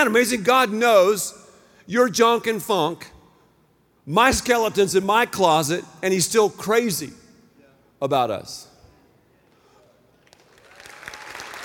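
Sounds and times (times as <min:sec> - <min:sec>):
speech: 0:00.0 - 0:03.2, 0:04.0 - 0:07.2, 0:08.0 - 0:08.7
audience clapping: 0:10.2 - 0:11.6.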